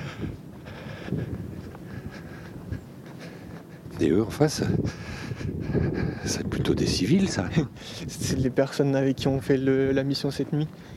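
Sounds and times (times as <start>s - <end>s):
strong wind gusts roaring across an open seafront: 0.0s - 10.9s
speech: 4.0s - 10.9s.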